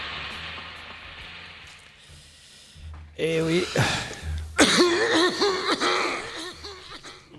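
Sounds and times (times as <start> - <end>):
speech: 3.2 - 4.0
harsh raspy coughing fit: 3.7 - 7.3.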